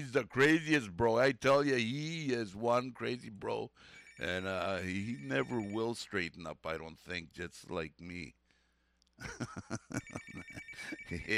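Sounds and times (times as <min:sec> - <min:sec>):
speech: 0:00.0 - 0:08.4, 0:09.2 - 0:11.3
telephone ringing with a fast rattling bell trill: 0:03.8 - 0:06.0, 0:09.9 - 0:11.3
laughter: 0:09.2 - 0:11.3.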